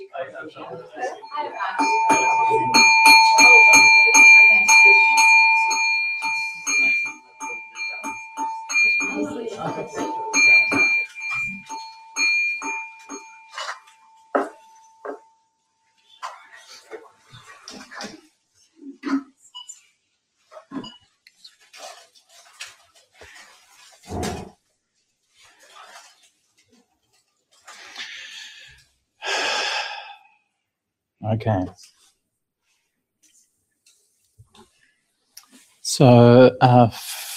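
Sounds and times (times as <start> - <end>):
speech: 0.4 - 3.0, 31.4 - 31.8, 36.0 - 37.1
bell ringing: 1.0 - 15.5.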